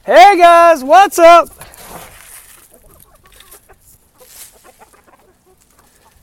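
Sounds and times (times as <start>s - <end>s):
speech: 0.0s - 1.6s
flock of chickens clucking and murmuring in an outdoor yard: 1.5s - 6.2s.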